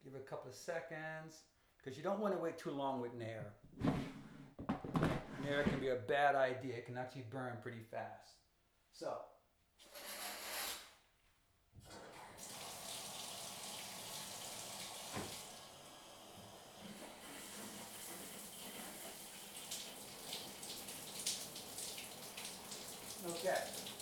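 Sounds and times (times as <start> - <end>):
speech: 0.0 - 4.2, 5.4 - 8.4, 9.0 - 10.0
shower water running: 11.9 - 24.0.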